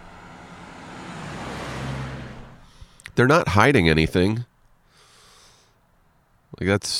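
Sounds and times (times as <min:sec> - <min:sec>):
cemetery security car low engine drone: 0:00.0 - 0:03.0
cemetery security car road rumble driving past: 0:00.0 - 0:04.8
speech: 0:03.2 - 0:04.5, 0:06.6 - 0:06.9.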